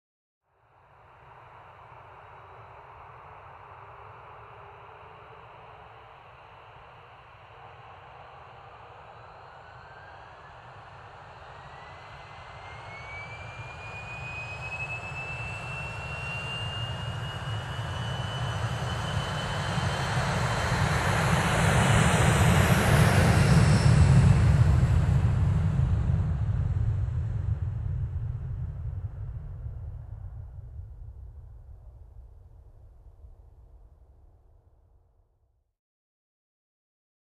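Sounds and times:
aircraft lifting off with a whirring sound: 0:08.8 - 0:32.9.

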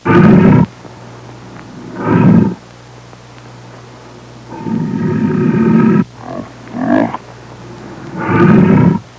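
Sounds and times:
lion snarling: 0:00.0 - 0:00.7, 0:01.7 - 0:02.6, 0:04.5 - 0:09.1.

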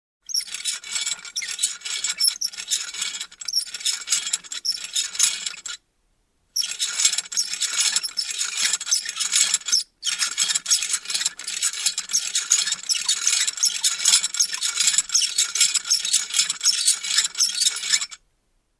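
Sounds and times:
loose metal creaking: 0:00.3 - 0:05.8, 0:06.6 - 0:18.2.

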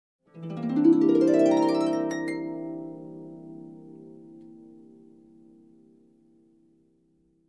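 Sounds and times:
slow dreamy harp chord: 0:00.3 - 0:06.4.

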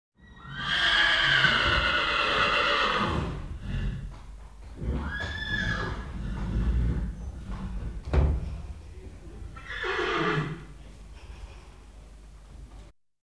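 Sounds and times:
horses neighing: 0:00.2 - 0:08.0, 0:09.5 - 0:11.8.

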